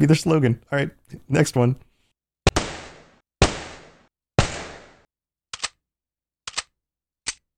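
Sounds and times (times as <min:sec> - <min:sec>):
speech: 0:00.0 - 0:01.9
loud gunshots with tails: 0:02.5 - 0:05.1
quick sharp cracks: 0:02.5 - 0:05.8.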